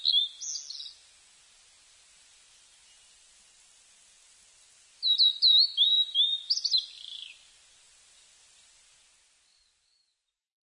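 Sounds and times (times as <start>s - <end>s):
blue-and-white flycatcher singing whistled phrases: 0.0s - 1.0s, 5.0s - 7.4s.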